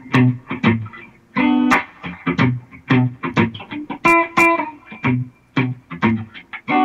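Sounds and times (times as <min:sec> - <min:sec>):
electric guitar riff with reverb: 0:00.0 - 0:06.8.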